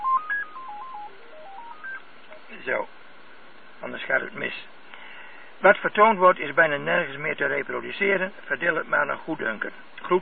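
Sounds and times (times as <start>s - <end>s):
telephone keypad tones while a call is dismissed: 0.0s - 2.0s
speech: 2.6s - 3.0s, 3.8s - 4.8s, 5.6s - 10.1s.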